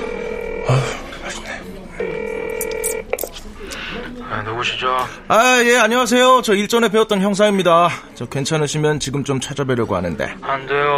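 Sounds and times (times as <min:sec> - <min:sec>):
ringback tone of an outgoing phone call: 0:00.0 - 0:00.8, 0:02.0 - 0:03.2
faint noise: 0:00.0 - 0:10.9
speech: 0:00.7 - 0:01.0, 0:03.6 - 0:10.9.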